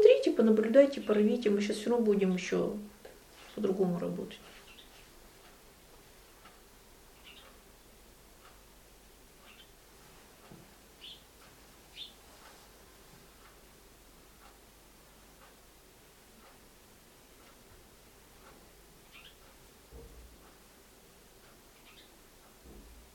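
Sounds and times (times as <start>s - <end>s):
hiss: 0.0s - 23.1s
speech: 0.4s - 2.9s, 3.6s - 4.6s
small bird chirping: 4.5s - 5.0s, 7.1s - 7.9s, 9.4s - 9.8s, 11.0s - 11.3s, 11.9s - 12.2s, 19.0s - 19.5s, 21.7s - 22.2s.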